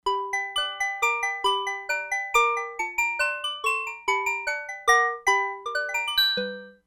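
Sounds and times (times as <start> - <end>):
Crumar Bit 99 mallet bell: 0.1 - 6.8.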